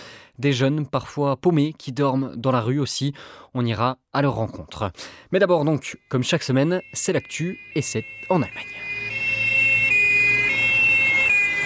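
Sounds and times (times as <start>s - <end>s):
speech: 0.4s - 8.8s
police sirens wailing: 6.6s - 11.6s.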